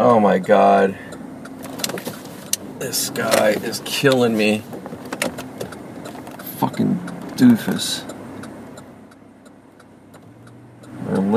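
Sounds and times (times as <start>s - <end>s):
car engine and road rumble inside a moving car in traffic: 0.0s - 11.3s
car turn signal ticking: 0.0s - 11.3s
speech: 0.3s - 1.1s, 2.8s - 5.0s, 6.6s - 8.1s.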